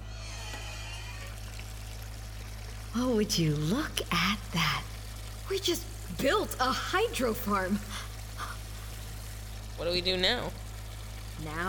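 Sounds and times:
low constant hum: 0.0 - 11.6
water running from a hose into a bin: 0.1 - 11.6
speech: 3.0 - 4.9, 5.5 - 8.1, 9.8 - 10.6, 11.4 - 11.6.

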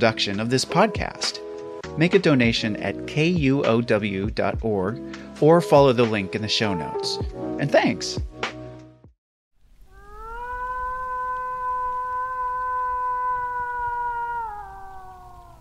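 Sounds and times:
speech: 0.0 - 8.3
person imitating a wolf howl to draw a wolf out of the forest: 9.9 - 15.5.

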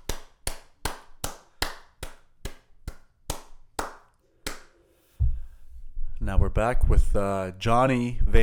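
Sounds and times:
applause hand claps: 0.0 - 4.8
low thump: 5.2 - 5.6
speech: 6.2 - 8.4.

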